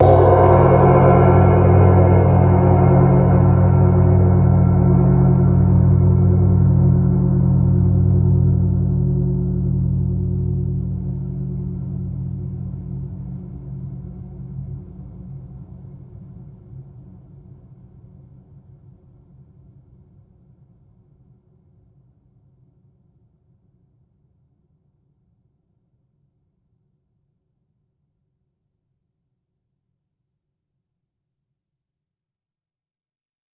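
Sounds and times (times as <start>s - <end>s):
gong: 0.0s - 16.1s.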